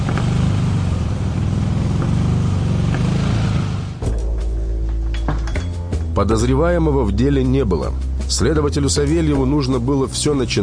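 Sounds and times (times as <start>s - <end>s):
car engine running: 0.0s - 6.0s
speech: 6.2s - 10.6s.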